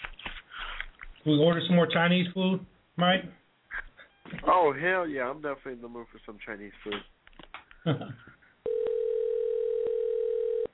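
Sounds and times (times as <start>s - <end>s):
speech: 1.2s - 3.4s, 4.4s - 7.2s, 7.8s - 8.3s
telephone dial tone while calling: 8.7s - 10.7s.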